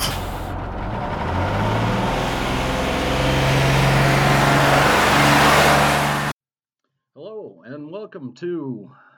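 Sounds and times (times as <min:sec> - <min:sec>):
large bus engine turning over and revving: 0:00.0 - 0:06.3
speech: 0:08.1 - 0:09.1.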